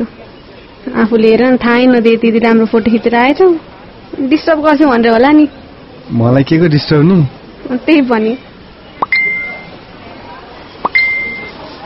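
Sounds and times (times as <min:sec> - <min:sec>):
speech: 0:01.0 - 0:08.5
phone message notification tone: 0:09.0 - 0:09.8, 0:10.8 - 0:11.5.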